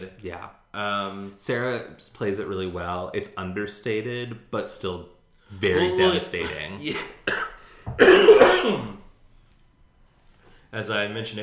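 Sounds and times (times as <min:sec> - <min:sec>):
speech: 0:00.0 - 0:09.0, 0:10.7 - 0:11.4
wet phlegmy cough: 0:06.4 - 0:09.0.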